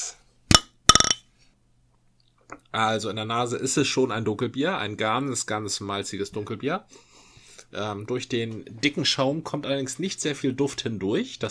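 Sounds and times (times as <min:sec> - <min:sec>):
glasses clinking in a toast: 0:00.9 - 0:01.2
speech: 0:02.8 - 0:07.1, 0:07.7 - 0:11.4.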